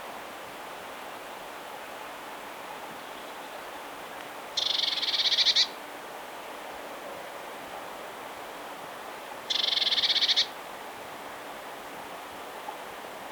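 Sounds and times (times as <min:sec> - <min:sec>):
Eurasian blue tit Cyanistes caeruleus giving a dry buzzy churring rattle: 0:04.6 - 0:05.7, 0:09.5 - 0:10.5.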